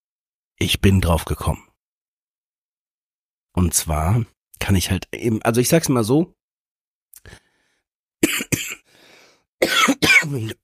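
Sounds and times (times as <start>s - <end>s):
speech: 0.6s - 1.7s, 3.6s - 6.4s, 7.2s - 7.4s, 9.6s - 10.6s
person with a heavy cough coughing hard: 8.2s - 8.9s, 9.6s - 10.6s.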